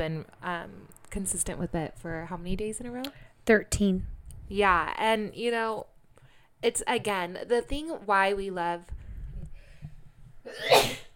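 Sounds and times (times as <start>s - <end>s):
speech: 0.0s - 5.9s, 6.6s - 9.0s, 10.5s - 11.0s
person sneezing: 10.5s - 11.1s.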